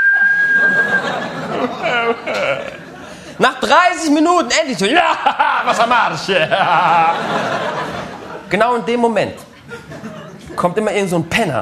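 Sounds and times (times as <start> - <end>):
thin steady high whistle: 0.0 - 1.2
chattering voices: 0.0 - 11.6
people laughing: 0.2 - 3.6, 4.8 - 8.5, 9.4 - 10.6
speech: 3.7 - 7.8, 8.5 - 9.5, 10.6 - 11.6.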